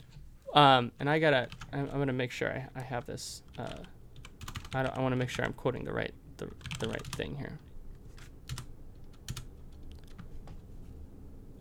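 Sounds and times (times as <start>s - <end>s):
speech: 0.5s - 4.0s, 4.7s - 7.6s
man typing on a computer keyboard: 1.4s - 1.7s, 3.5s - 5.0s, 6.4s - 7.2s, 8.5s - 10.3s.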